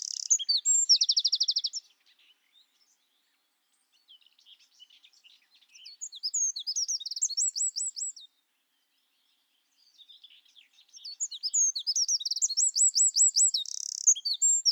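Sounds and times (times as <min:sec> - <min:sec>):
Eurasian wren Troglodytes troglodytes song with rapid trills: 0:00.0 - 0:01.9, 0:05.7 - 0:08.2, 0:10.8 - 0:14.6.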